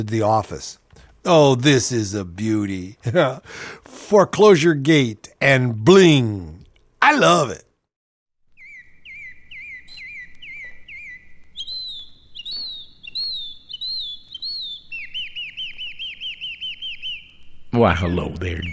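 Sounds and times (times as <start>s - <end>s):
speech: 0.0s - 7.6s, 17.7s - 18.7s
bird singing whistled chirps and trill: 8.6s - 18.7s.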